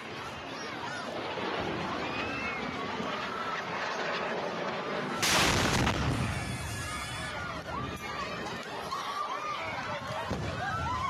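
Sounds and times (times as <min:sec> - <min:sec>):
crowd noise: 0:00.0 - 0:11.0
rocket exploding in a civilian area: 0:05.2 - 0:07.3.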